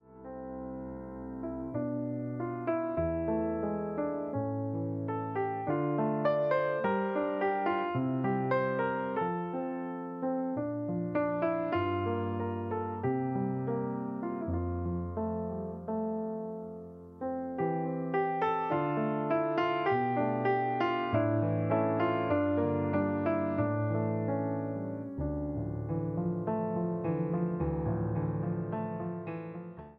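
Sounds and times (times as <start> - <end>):
instrumental piano music: 0.0 - 29.9.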